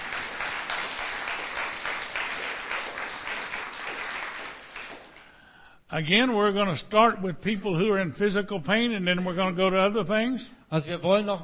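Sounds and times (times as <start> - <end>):
audience applause at a religious gathering: 0.0 - 5.3
speech: 6.0 - 11.4.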